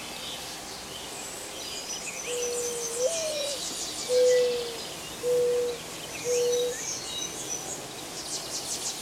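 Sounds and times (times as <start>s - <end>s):
mourning dove cooing: 2.3s - 6.8s.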